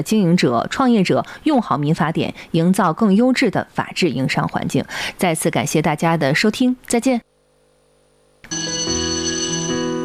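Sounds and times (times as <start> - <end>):
speech: 0.0 - 7.3
electric school bell ringing at a plateau school in Qinghai: 8.5 - 10.0.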